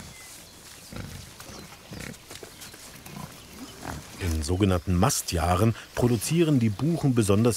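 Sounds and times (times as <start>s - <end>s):
wild boar rustling and snuffling as it roots through the ground: 0.0s - 4.6s
wild boar grunting: 0.8s - 4.5s
speech: 4.4s - 7.5s.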